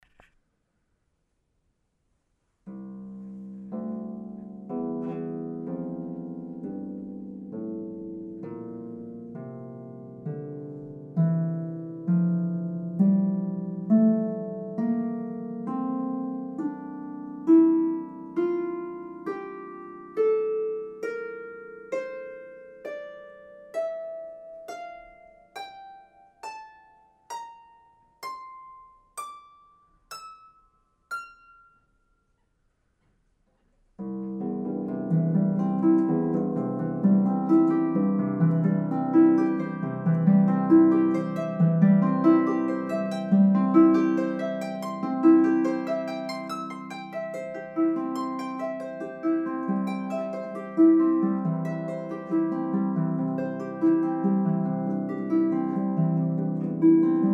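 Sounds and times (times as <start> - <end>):
harp: 2.6 - 32.5, 34.0 - 57.3.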